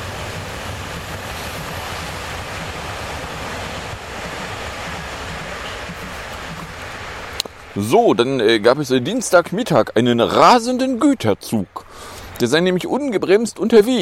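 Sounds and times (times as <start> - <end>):
U-Bahn subway train roaring past: 0.0 - 10.6
speech: 7.8 - 14.0.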